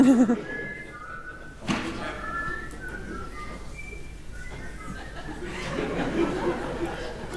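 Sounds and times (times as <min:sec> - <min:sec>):
people laughing in a small group: 0:00.0 - 0:00.7, 0:04.9 - 0:07.3
person whistling a short tune: 0:00.0 - 0:05.4
chatter from a small group: 0:00.0 - 0:07.3.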